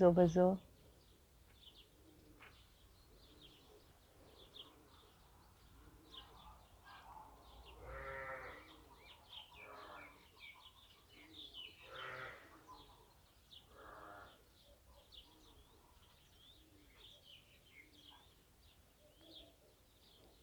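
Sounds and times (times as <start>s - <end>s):
speech: 0.0s - 0.6s
soft bird chirps: 0.6s - 20.4s
sheep bleating: 7.8s - 8.7s, 11.9s - 12.5s.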